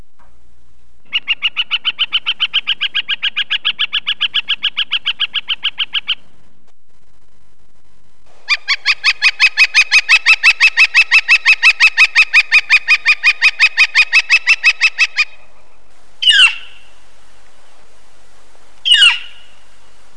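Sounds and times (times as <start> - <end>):
Northern Flicker songs and calls: 1.0 - 6.4, 8.4 - 17.0, 18.8 - 19.9.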